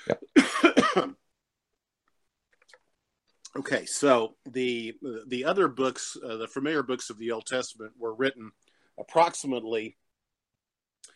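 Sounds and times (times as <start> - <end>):
person coughing harshly: 0.0 - 1.2
speech: 0.1 - 1.2, 3.6 - 10.0.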